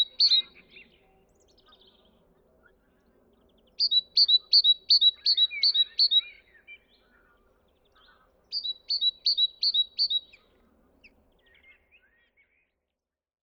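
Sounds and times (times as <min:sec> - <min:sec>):
Parus major repeating a two-note whistled phrase: 0:00.0 - 0:00.9, 0:03.8 - 0:06.4, 0:08.5 - 0:10.4.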